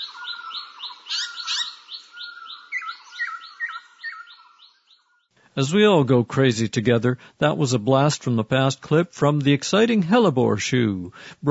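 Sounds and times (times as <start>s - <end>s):
birds chirping and trilling: 0.0s - 5.4s
speech: 5.6s - 11.4s.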